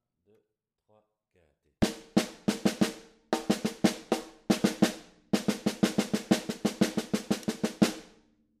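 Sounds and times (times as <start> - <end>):
ternary snare drum coda in batucada style: 1.8 - 8.2.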